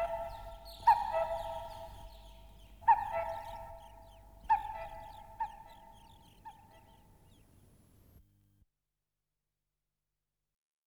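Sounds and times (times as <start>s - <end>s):
bird giving harmonic honking calls: 0.0s - 7.0s.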